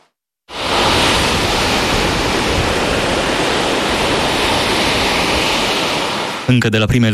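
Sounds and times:
strong wind on the sea: 0:00.5 - 0:06.5
large sea waves of heavy surf: 0:00.5 - 0:07.1
speech: 0:06.5 - 0:07.1.

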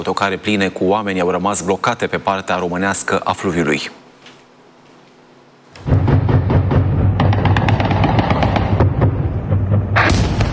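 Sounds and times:
speech: 0:00.0 - 0:04.0
booming blasts during drone attack on Orlivka border crossing: 0:05.8 - 0:10.5
Ukrainian air defence anti-aircraft fire at Shahed drones over the Danube: 0:05.9 - 0:10.5.

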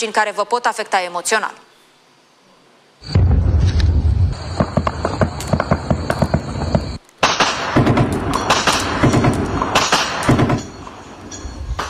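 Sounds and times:
speech: 0:00.0 - 0:01.7
car bomb explosion: 0:03.0 - 0:10.6
gunfire exchange: 0:04.5 - 0:10.8.

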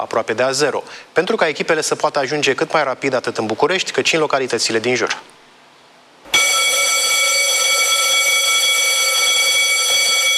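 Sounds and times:
speech: 0:00.0 - 0:05.2
fire station alarm for CBRN firefighter crews in Jilava Romania: 0:06.3 - 0:10.3.

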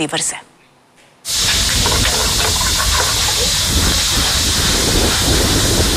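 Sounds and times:
vegetables stir-frying in hot sesame oil with ginger and garlic in a pan: 0:01.3 - 0:05.9.

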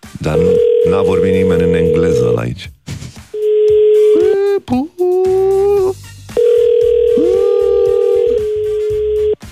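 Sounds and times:
telephone ringing tone: 0:00.2 - 0:02.4, 0:03.4 - 0:04.4, 0:06.4 - 0:09.4
speech: 0:00.2 - 0:02.8, 0:04.7 - 0:05.6.

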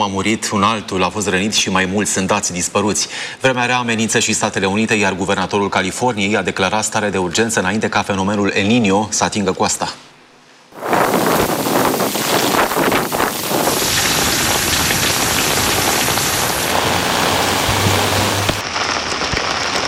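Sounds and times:
speech: 0:00.0 - 0:10.0
typhoon wind gusting at nearly 200 km/h: 0:10.8 - 0:18.6
heavy typhoon rain pouring in Japan: 0:10.8 - 0:19.8.

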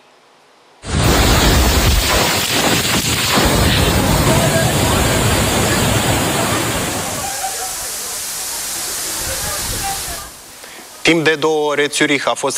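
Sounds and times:
strong storm wind gusts: 0:00.8 - 0:10.5
speech: 0:11.1 - 0:12.5.

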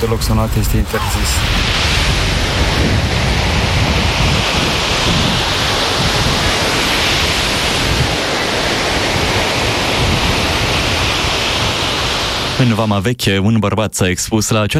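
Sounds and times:
speech: 0:00.0 - 0:03.1, 0:12.6 - 0:14.7
heavy sea surf roaring with hissing wash and deep rumbling surges: 0:00.0 - 0:13.0.

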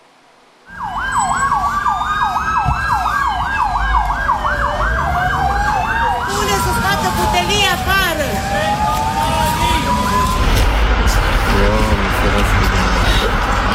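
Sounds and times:
low rumble of fire engine and road noise: 0:00.0 - 0:13.7
fire engine siren yelping while responding to a blaze at a social housing complex: 0:00.6 - 0:11.5.

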